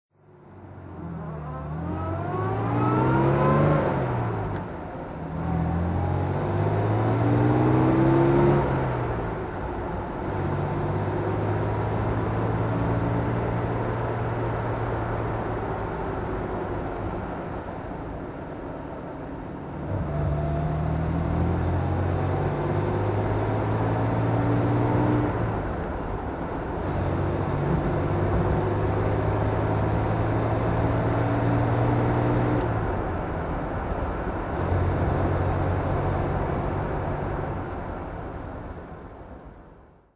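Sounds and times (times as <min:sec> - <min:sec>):
Jaguar XK150 3.8 FHC engine driving: 0:00.2 - 0:39.8.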